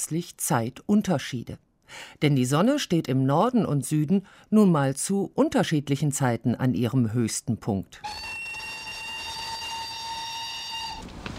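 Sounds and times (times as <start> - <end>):
speech: 0.0 - 8.4
train whistle or horn blast at a station: 8.0 - 11.1.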